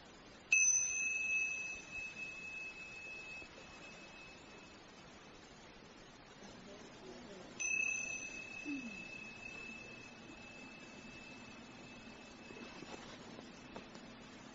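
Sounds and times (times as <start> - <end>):
meditation bell ringing: 0.5 - 5.0, 7.6 - 14.5.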